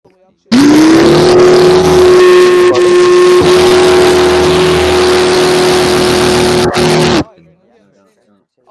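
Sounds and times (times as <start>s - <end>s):
lawn mower: 0.5s - 7.2s.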